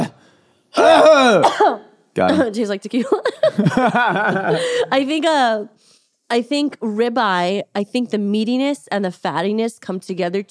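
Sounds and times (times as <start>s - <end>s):
person clearing throat: 0.0s - 0.2s, 0.8s - 2.5s
cough: 0.8s - 2.4s
speech: 1.3s - 10.4s
laughter: 2.3s - 5.1s.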